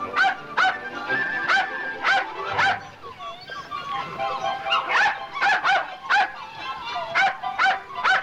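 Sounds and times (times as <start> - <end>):
terrier puppies whimpering: 0.0 - 8.2
white terrier and puppies barking from a pen: 0.0 - 8.2.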